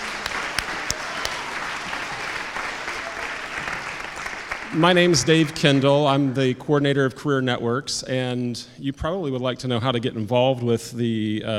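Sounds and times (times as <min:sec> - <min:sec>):
sharper individual claps: 0:00.0 - 0:03.0
sustained dense audience applause: 0:00.0 - 0:06.4
speech: 0:04.7 - 0:11.5.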